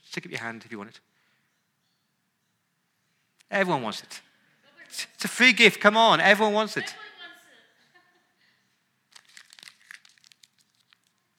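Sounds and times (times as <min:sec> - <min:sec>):
speech: 0:00.2 - 0:01.1, 0:03.5 - 0:04.3, 0:04.9 - 0:07.1
paper banknote being crumpled: 0:09.1 - 0:11.3.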